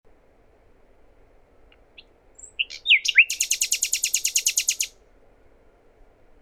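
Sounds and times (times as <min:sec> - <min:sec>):
common nightingale Luscinia megarhynchos singing whistled and harsh high notes: 0:02.4 - 0:04.9.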